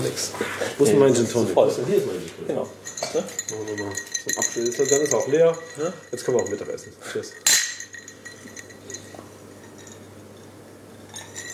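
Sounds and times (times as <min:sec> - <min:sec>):
speech: 0:00.0 - 0:07.6
low steady hum: 0:02.3 - 0:11.5
drinking glasses clinking in a toast: 0:02.5 - 0:11.5.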